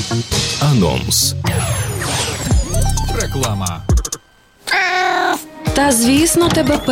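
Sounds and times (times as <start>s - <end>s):
speech: 0.1s - 2.3s, 3.2s - 3.9s, 5.8s - 6.9s
cat meowing loudly: 4.6s - 5.5s.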